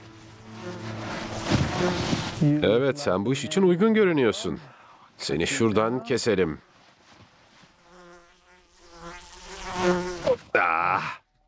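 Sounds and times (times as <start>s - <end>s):
fly buzzing into a person's ear: 0.0s - 3.0s, 7.5s - 10.4s
speech: 1.8s - 6.7s.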